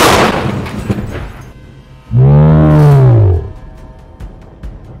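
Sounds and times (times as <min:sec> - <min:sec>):
gun firing a single shot: 0:00.0 - 0:00.8
descending tonal groan: 0:02.1 - 0:03.7.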